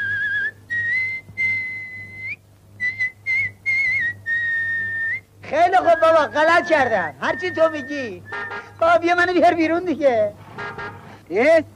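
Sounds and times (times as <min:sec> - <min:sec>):
man whistling a lilting tune: 0:00.0 - 0:08.8
faint low hum: 0:00.0 - 0:11.7
speech: 0:05.5 - 0:10.4, 0:11.3 - 0:11.7.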